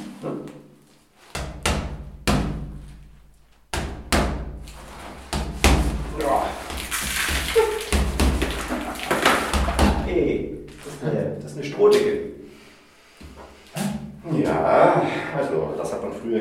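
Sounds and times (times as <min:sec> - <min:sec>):
hammer knocking against a plastered straw-mat ceiling: 0:01.4 - 0:03.0, 0:03.7 - 0:06.2, 0:07.8 - 0:10.1
crackling debris: 0:04.8 - 0:10.9
people talking: 0:06.1 - 0:06.6, 0:09.8 - 0:12.2, 0:14.2 - 0:16.3.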